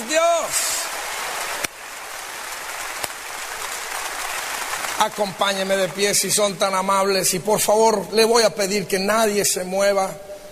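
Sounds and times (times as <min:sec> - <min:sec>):
large crowd applauding: 0:00.0 - 0:06.8
speech: 0:05.0 - 0:10.3.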